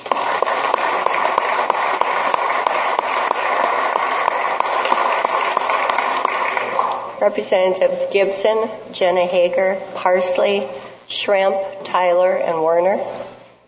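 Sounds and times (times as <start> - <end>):
sizable audience applause: 0.0 - 7.1
speech: 7.2 - 13.3.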